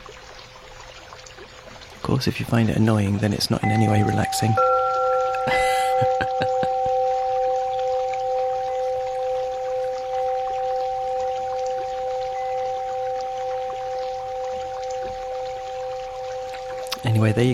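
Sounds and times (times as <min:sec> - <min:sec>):
babbling brook: 0:00.0 - 0:17.5
speech: 0:02.1 - 0:04.8, 0:05.5 - 0:06.6, 0:17.0 - 0:17.5
wind chimes ringing: 0:03.6 - 0:17.5
laughter: 0:05.4 - 0:06.8.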